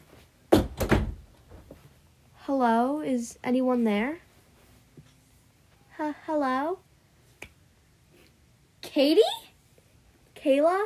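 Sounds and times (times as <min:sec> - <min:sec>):
hidden door on a boat opening with a solid thunk: 0:00.5 - 0:01.2
speech: 0:02.5 - 0:04.2, 0:06.0 - 0:06.8, 0:09.0 - 0:09.4, 0:10.4 - 0:10.8.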